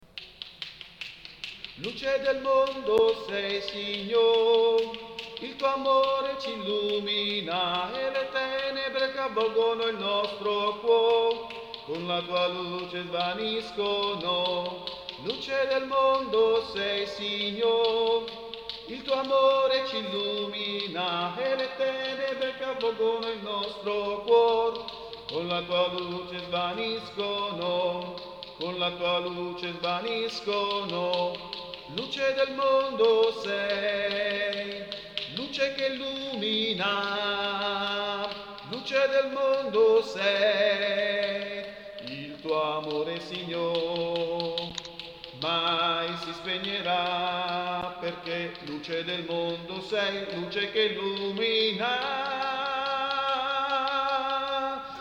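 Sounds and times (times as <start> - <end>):
sopranos singing: 1.6 - 54.9.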